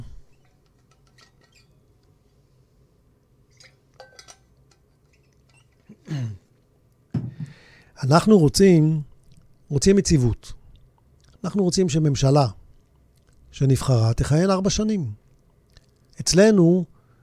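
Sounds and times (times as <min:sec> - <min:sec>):
soft handling clicks from a glass: 0:03.5 - 0:06.0
speech: 0:08.0 - 0:09.1, 0:09.7 - 0:10.6, 0:11.4 - 0:12.6, 0:13.5 - 0:15.2, 0:16.2 - 0:16.9.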